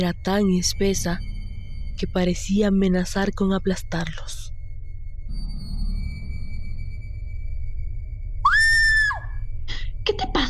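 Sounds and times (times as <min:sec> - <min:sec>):
speech: 0:00.0 - 0:01.3, 0:02.0 - 0:04.4
quiet low rumble: 0:00.0 - 0:10.4
person screaming in fright in the dark: 0:08.5 - 0:09.4.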